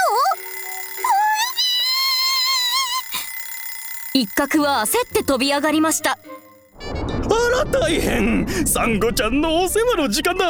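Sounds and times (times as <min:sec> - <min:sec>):
many electronic alarm clocks ringing: 0:00.0 - 0:06.8
speech: 0:04.2 - 0:06.4, 0:07.4 - 0:10.4.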